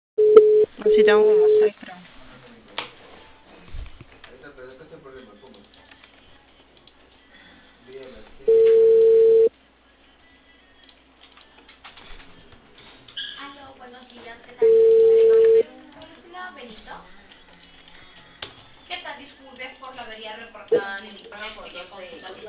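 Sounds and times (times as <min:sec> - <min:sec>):
telephone ringback tone on a thin phone line: 0:00.2 - 0:01.7, 0:08.5 - 0:09.5, 0:14.6 - 0:15.6
speech: 0:01.0 - 0:02.1.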